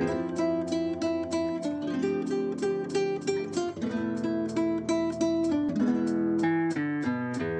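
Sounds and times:
guitar bolero: 0.0 - 7.5
jazz loops: 0.0 - 7.5.

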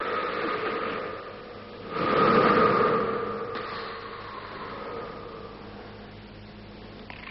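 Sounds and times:
rumbles: 0.0 - 7.2
breathing in a hallway: 1.8 - 6.1.

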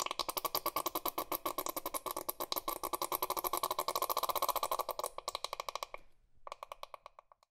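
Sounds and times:
squeezed liquid spurting: 0.0 - 5.6.

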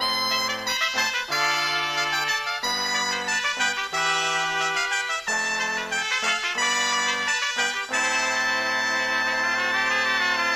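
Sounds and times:
salsa horns: 0.0 - 10.5.

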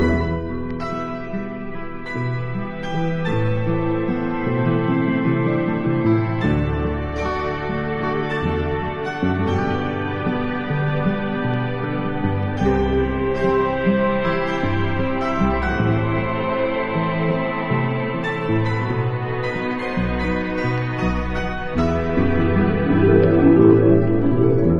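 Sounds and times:
sad guitar loop: 0.0 - 24.7
sad strings loop: 0.0 - 24.7.

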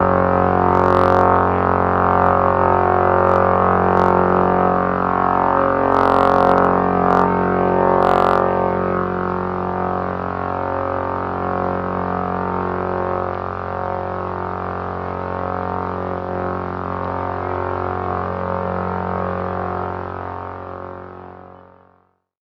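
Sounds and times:
synth notes: 0.0 - 19.7
helicopter: 0.0 - 22.2.

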